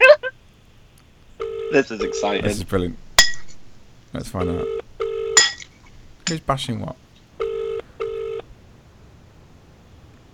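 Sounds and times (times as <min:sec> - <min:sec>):
telephone ringback tone of an outgoing call on speakerphone: 0:01.4 - 0:02.4, 0:04.4 - 0:05.4, 0:07.4 - 0:08.4
speech: 0:01.7 - 0:03.0, 0:04.1 - 0:04.8, 0:06.3 - 0:07.0.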